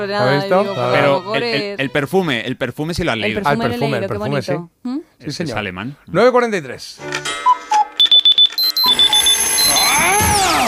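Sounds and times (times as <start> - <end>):
speech: 0.0 - 7.5
alarm clock ringing in electronic beeps: 7.3 - 10.3.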